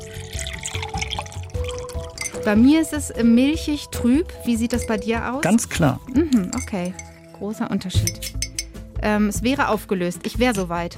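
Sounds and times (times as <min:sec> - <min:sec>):
sparkling water pouring into a glass: 0:00.0 - 0:02.7, 0:04.6 - 0:08.8, 0:10.3 - 0:10.6
speech: 0:02.4 - 0:08.4, 0:09.0 - 0:10.9.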